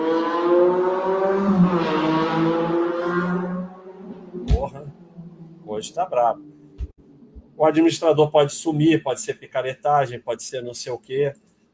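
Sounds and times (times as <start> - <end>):
motorcycle engine revving outside: 0.0 - 7.0
speech: 5.8 - 6.6, 7.6 - 11.5.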